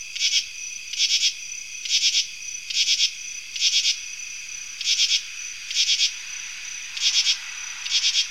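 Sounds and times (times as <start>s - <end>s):
constant background drone of insects: 0.0s - 8.2s
northern true katydid raspy rattling bursts: 4.6s - 8.2s.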